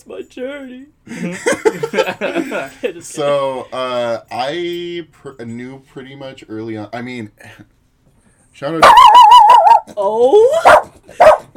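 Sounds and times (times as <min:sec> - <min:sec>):
speech: 0:00.0 - 0:07.8, 0:08.6 - 0:09.2, 0:09.9 - 0:11.5
laughter: 0:01.1 - 0:03.8
dog barking and yelping: 0:08.8 - 0:11.5.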